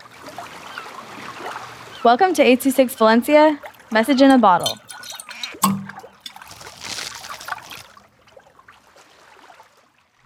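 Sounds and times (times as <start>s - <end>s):
water trickling and splashing from rain dripping off trees near a small waterfall: 0.0s - 10.2s
speech: 2.0s - 4.8s
sharp drip: 3.6s - 7.9s.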